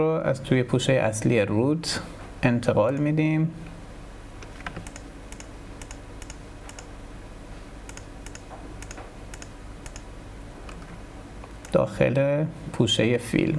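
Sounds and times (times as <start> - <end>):
speech: 0.0 - 3.7, 11.8 - 13.5
steady low hiss: 0.0 - 13.5
typing on a computer keyboard: 4.4 - 6.9, 7.9 - 11.8.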